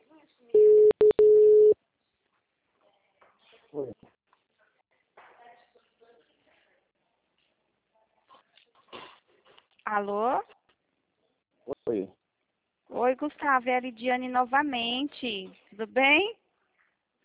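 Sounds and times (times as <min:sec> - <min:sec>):
telephone tone as a call is dialled: 0:00.6 - 0:01.8
speech: 0:09.9 - 0:10.5, 0:11.9 - 0:12.2, 0:13.0 - 0:16.4.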